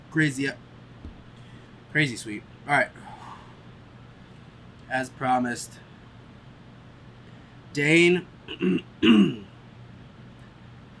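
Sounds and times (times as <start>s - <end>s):
speech: 0.1s - 0.6s, 1.9s - 3.1s, 4.9s - 5.8s, 7.7s - 9.5s
throat clearing: 8.5s - 9.5s.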